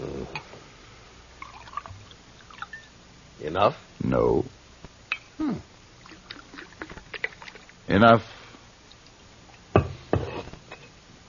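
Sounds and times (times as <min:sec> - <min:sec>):
drink pouring into a glass: 0:01.4 - 0:02.9, 0:06.0 - 0:07.7
speech: 0:03.4 - 0:04.6, 0:07.9 - 0:08.4.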